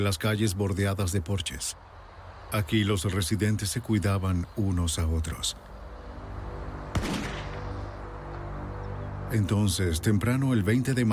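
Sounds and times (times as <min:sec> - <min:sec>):
speech: 0:00.0 - 0:01.9, 0:02.5 - 0:05.7, 0:09.3 - 0:11.1
gunshot: 0:06.9 - 0:07.7.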